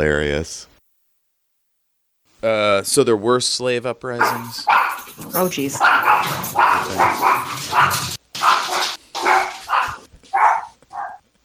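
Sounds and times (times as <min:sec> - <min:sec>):
speech: 0:00.0 - 0:00.7, 0:02.4 - 0:08.1
dogs barking: 0:04.2 - 0:11.3.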